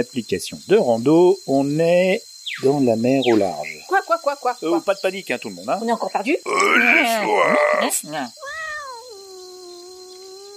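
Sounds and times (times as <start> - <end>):
speech: 0.0 - 8.6
cat meowing: 8.4 - 10.5.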